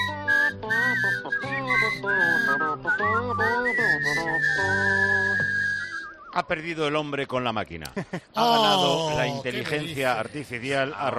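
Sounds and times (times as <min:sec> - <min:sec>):
steady backing music: 0:00.0 - 0:06.1
person whistling a bright bouncy melody: 0:00.0 - 0:06.4
speech: 0:06.4 - 0:11.1.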